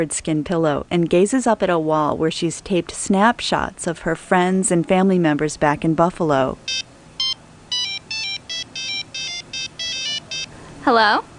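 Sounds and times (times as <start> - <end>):
speech: 0.0 - 6.9, 10.9 - 11.3
cell phone ringing with an electronic melody in a college dormitory room: 6.7 - 10.6.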